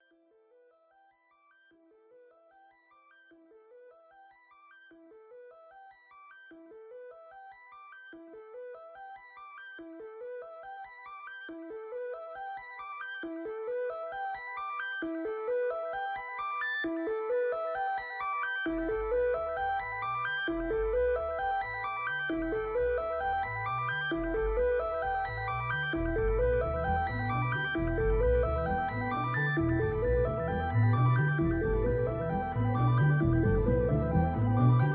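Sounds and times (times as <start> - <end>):
Moog synthesizer: 0.0 - 34.9.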